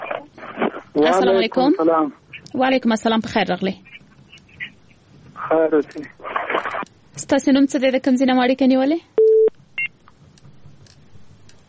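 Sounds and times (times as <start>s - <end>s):
speech: 1.0s - 3.9s, 5.5s - 6.2s, 7.2s - 9.1s
short loud electronic beep of a dropped phone line: 9.2s - 9.9s.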